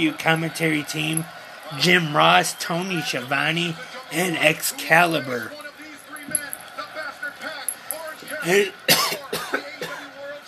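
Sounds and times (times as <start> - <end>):
speech: 0.0 - 5.6, 8.4 - 8.9
person coughing: 8.5 - 10.0
person clearing throat: 8.9 - 10.0.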